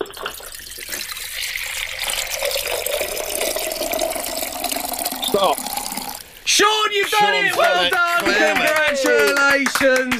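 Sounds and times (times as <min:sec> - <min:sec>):
liquid pouring into a container: 0:00.0 - 0:06.4
speech: 0:05.4 - 0:05.6, 0:06.6 - 0:10.1.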